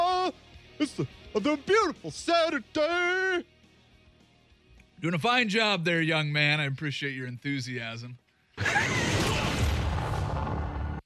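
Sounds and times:
speech: 0.3s - 3.6s, 5.0s - 9.0s
rumbling explosion sound effect with crashing burst and roaring debris: 8.6s - 11.0s.

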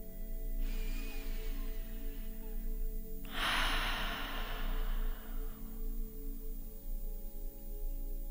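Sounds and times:
steady low hum: 0.0s - 8.3s
slow breath drawn in through the nose: 0.6s - 6.6s.

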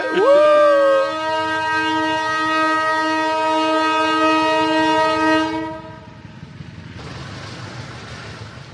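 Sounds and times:
train locomotive horn blast: 0.0s - 6.2s
passing train locomotive engine rumble: 0.0s - 8.7s.

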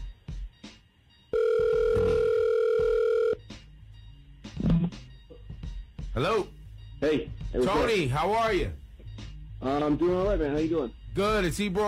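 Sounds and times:
telephone dial tone while placing a call: 1.3s - 3.4s
speech: 6.2s - 8.8s, 9.6s - 11.8s.

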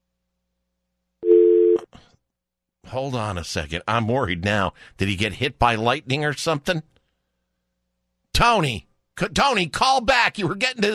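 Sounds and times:
telephone tone after a phone line goes dead: 1.2s - 1.9s
speech: 2.9s - 6.9s, 8.4s - 10.9s.

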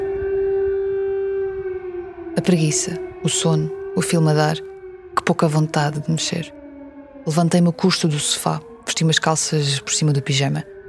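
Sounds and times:
warning sirens wailing: 0.0s - 10.8s
speech: 2.4s - 6.6s, 7.2s - 10.8s.

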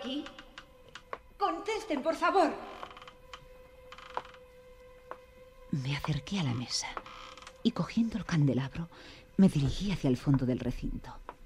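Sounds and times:
creaks in a large dark room: 0.0s - 1.3s, 2.6s - 4.5s, 6.8s - 7.7s
speech: 1.5s - 2.7s, 5.7s - 7.0s, 7.6s - 11.2s.

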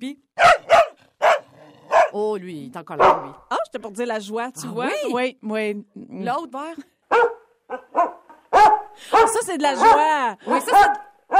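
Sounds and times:
speech: 0.0s - 0.6s, 2.2s - 7.3s, 9.0s - 11.0s
dog barking: 0.4s - 2.2s, 3.0s - 3.5s, 7.1s - 11.3s.

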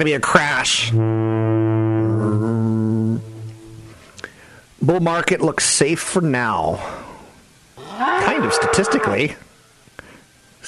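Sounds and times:
speech: 0.0s - 3.3s, 4.8s - 7.0s, 8.0s - 9.4s
foghorn blast: 0.7s - 4.0s.

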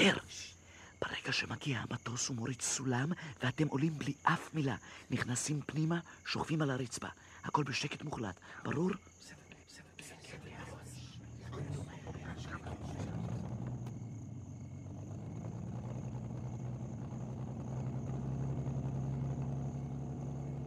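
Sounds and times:
speech: 0.0s - 0.4s, 1.0s - 9.4s
engines of two cars rumbling as they arrive: 10.5s - 20.6s.

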